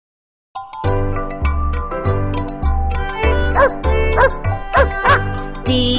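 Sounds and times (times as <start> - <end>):
upbeat rhythmic music with bass pulses and bright tones: 0.6 - 5.9
dog barking loudly: 3.5 - 5.3.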